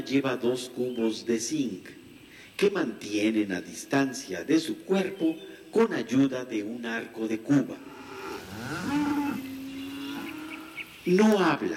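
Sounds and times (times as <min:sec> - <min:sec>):
speech: 0:00.0 - 0:02.0, 0:02.6 - 0:08.0, 0:08.6 - 0:09.5, 0:11.0 - 0:11.7
cow mooing: 0:07.8 - 0:11.0.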